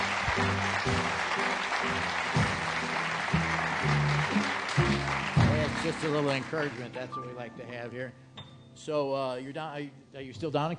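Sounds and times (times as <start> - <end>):
crowd in a tent applauding: 0.0 - 7.4
speech: 5.9 - 10.7.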